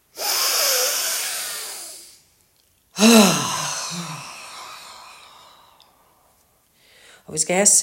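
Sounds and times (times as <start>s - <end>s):
forceful inhalations through the nose during a breathing exercise: 0.0s - 2.2s, 3.0s - 6.2s
speech: 3.0s - 4.1s, 7.3s - 7.8s.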